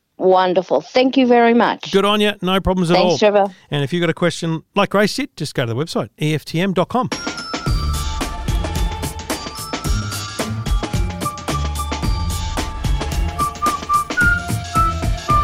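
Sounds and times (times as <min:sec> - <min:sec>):
speech: 0:00.2 - 0:07.3
bright catchy jingle with whistled melody: 0:07.2 - 0:15.4
steady beat with sharp percussive hits: 0:07.7 - 0:15.4.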